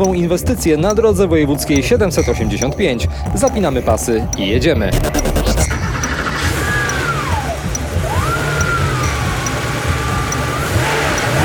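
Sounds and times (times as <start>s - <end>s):
speech: 0.0s - 5.4s
continuous rumbling background: 0.0s - 11.4s
Porsche 911 engine revving: 4.8s - 11.4s.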